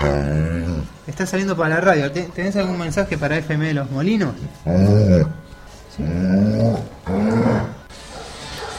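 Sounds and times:
dog growling: 0.0 - 1.1, 4.4 - 8.7
speech: 1.2 - 5.3.

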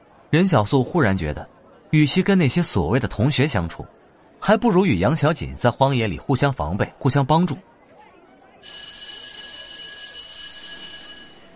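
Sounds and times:
speech: 0.3 - 7.7
metallic school bell ringing for the start of class: 8.6 - 11.5.

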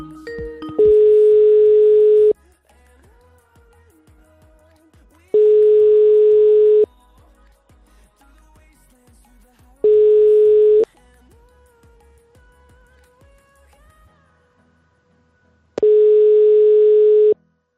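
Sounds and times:
telephone ringback tone while placing a call: 0.3 - 2.4, 5.4 - 6.9, 9.9 - 10.9, 15.8 - 17.4.

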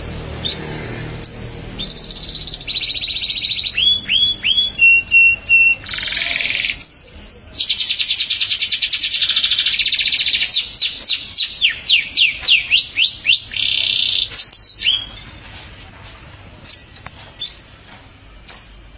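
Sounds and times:
canary song with trills and chirps: 0.0 - 18.9.

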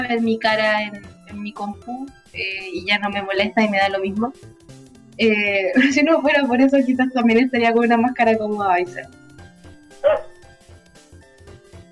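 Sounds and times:
speech: 0.0 - 4.6, 5.2 - 9.2, 10.0 - 10.3
dog barking: 10.0 - 10.4.

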